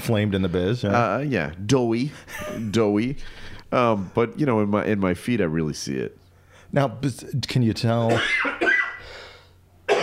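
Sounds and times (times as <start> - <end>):
speech: 0.0 - 8.6
person giving harsh coughs: 8.1 - 9.0, 9.9 - 10.0.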